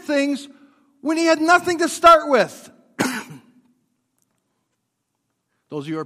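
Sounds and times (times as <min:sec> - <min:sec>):
speech: 0:00.1 - 0:02.7, 0:05.7 - 0:06.0
throaty cough: 0:03.0 - 0:03.6.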